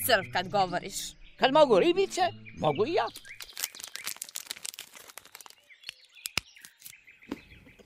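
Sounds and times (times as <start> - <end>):
speech: 0.0 - 3.4
chocolate wrapper crinkling: 3.1 - 7.0.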